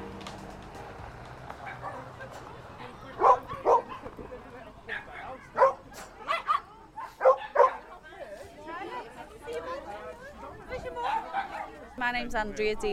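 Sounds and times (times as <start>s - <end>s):
people chattering: 0.2s - 12.9s
small white dogs barking and yipping on a group charity dog walk: 1.4s - 8.0s, 10.7s - 12.0s
speech: 12.2s - 12.9s.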